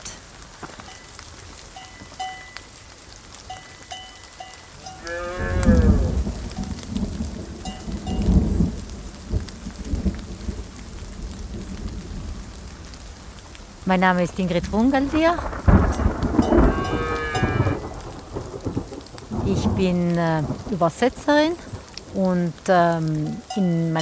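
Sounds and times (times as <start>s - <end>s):
heavy rain on a foggy mountain pasture: 0.0s - 24.0s
cows mooing on a mountain pasture: 4.8s - 6.2s, 16.4s - 18.0s
speech: 13.9s - 15.5s, 19.8s - 24.0s.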